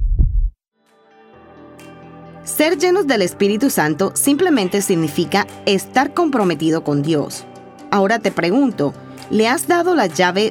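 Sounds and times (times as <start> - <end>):
deep heartbeat thump: 0.0 - 0.5
soft sustained music: 0.8 - 10.4
speech: 2.4 - 10.4.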